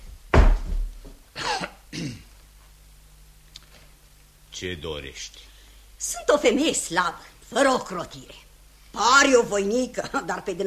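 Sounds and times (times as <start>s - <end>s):
door slamming shut: 0.3s - 0.9s
speech: 2.0s - 2.3s, 4.6s - 8.4s, 9.0s - 10.6s.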